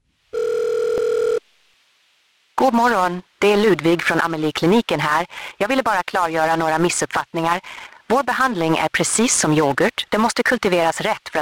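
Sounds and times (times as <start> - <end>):
steady electronic telephone tone: 0.3 - 1.4
speech: 2.7 - 11.3.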